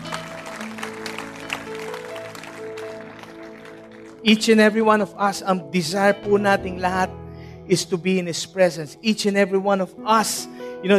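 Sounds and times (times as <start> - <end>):
audience applause: 0.0 - 4.4
speech: 4.2 - 10.9.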